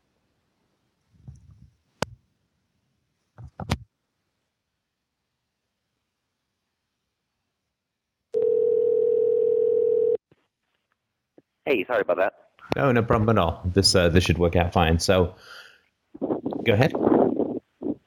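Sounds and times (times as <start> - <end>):
telephone dial tone while placing a call: 8.4 - 10.2
speech: 11.7 - 15.6, 16.6 - 17.2.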